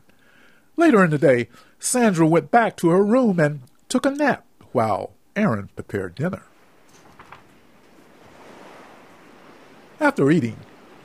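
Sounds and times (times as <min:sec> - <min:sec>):
speech: 0:00.8 - 0:06.5, 0:10.0 - 0:10.7
ocean waves roaring: 0:06.4 - 0:11.0.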